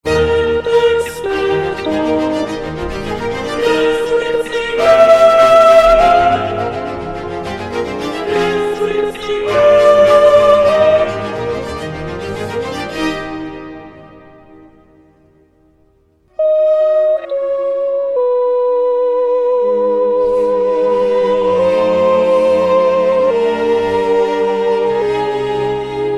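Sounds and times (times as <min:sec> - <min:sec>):
soprano singing: 0:00.1 - 0:14.3, 0:16.4 - 0:26.1.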